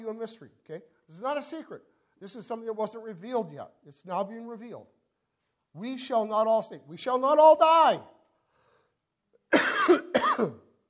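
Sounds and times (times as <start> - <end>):
speech: 0.1 - 5.0, 5.8 - 8.2, 9.5 - 10.6
harsh chesty coughs: 9.5 - 10.8.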